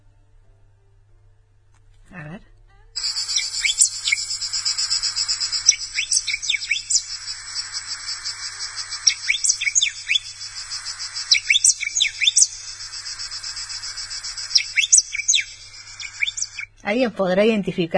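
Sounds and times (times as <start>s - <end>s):
crickets buzzing: 3.0s - 16.8s
yellow cardinal singing quick sliding whistles: 3.0s - 16.8s
speech: 16.9s - 17.9s.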